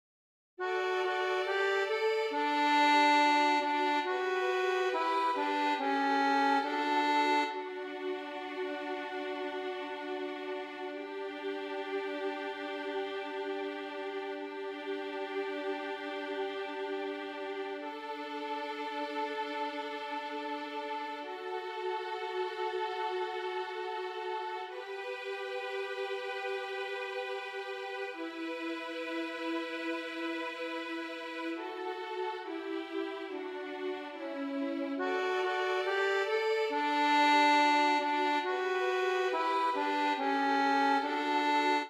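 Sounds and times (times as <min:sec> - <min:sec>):
violin playing a psalm: 0:00.6 - 0:41.8.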